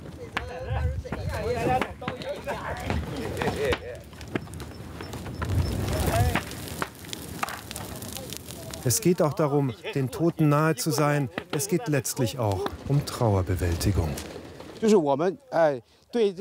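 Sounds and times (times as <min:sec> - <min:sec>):
large fire burning gifts for the dead at a funeral rite: 0:00.0 - 0:16.3
speech: 0:08.8 - 0:16.3.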